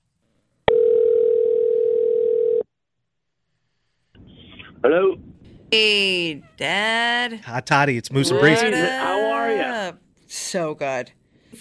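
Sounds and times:
outgoing phone call ringing tone: 0.7s - 2.6s
speech: 4.8s - 11.2s.

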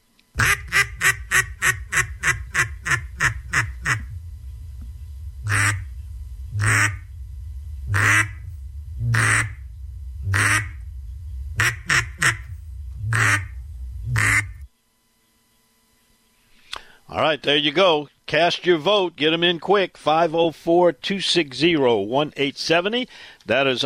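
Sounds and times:
duck call quacks in a contestant's calling routine: 0.4s - 4.1s, 5.5s - 5.8s, 6.6s - 7.0s, 7.9s - 8.4s, 9.1s - 9.6s, 10.3s - 10.8s, 11.6s - 12.5s, 13.1s - 13.5s, 14.2s - 14.5s
speech: 17.2s - 23.8s.

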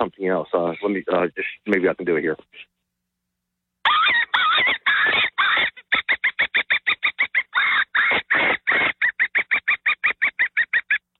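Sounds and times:
speech: 0.0s - 2.8s
predator call squeals imitating a dying animal: 3.9s - 11.1s.

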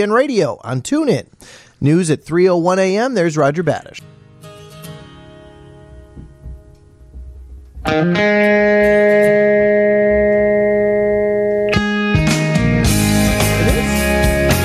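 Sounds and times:
speech: 0.0s - 4.2s, 7.8s - 10.2s
song with sustained heavily distorted chords: 4.1s - 14.6s.

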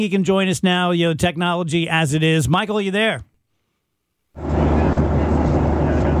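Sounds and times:
speech: 0.0s - 3.3s
airplane cabin noise aboard a Southwest airplane in flight heard through a phone line: 4.4s - 6.1s.

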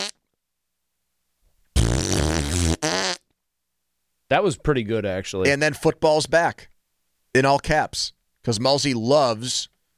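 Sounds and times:
buzzing fart noise blown with the mouth: 0.0s - 0.2s, 1.7s - 3.3s
speech: 4.3s - 6.7s, 7.4s - 9.7s.

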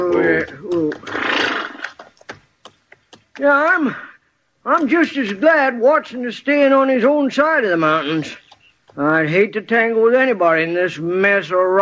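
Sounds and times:
speech: 0.2s - 1.3s, 3.4s - 8.4s, 9.0s - 11.8s
horse whinnying: 0.9s - 2.0s
horse snorting: 1.0s - 1.9s.

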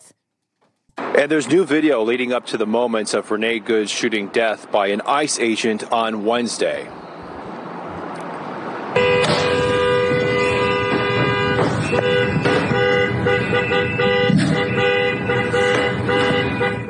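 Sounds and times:
rumbling street noise: 0.0s - 16.8s
speech: 1.2s - 7.1s
SUV car horn honking: 9.0s - 16.8s.

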